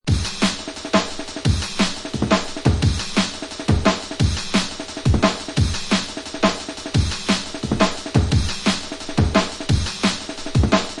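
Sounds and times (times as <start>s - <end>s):
sweeping jungle breakbeat drums: 0.0s - 10.9s.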